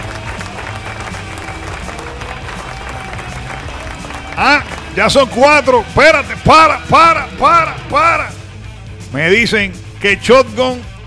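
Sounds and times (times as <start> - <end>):
crowd applause: 0.0 - 5.7
speech: 4.4 - 8.4, 9.1 - 10.9.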